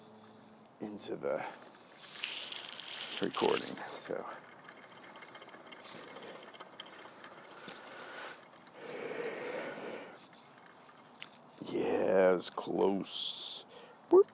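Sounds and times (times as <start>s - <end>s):
speech: 0.8s - 1.8s, 3.2s - 4.6s, 11.7s - 13.4s
hand crank wheel being turned, ratcheting: 2.0s - 11.7s.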